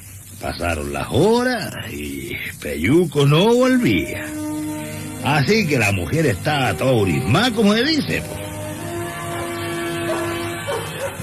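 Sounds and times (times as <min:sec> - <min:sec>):
rumble: 0:00.0 - 0:10.5
steady low hum: 0:00.0 - 0:10.8
speech: 0:00.4 - 0:04.5, 0:05.2 - 0:08.4
faint dog barks: 0:09.3 - 0:11.2.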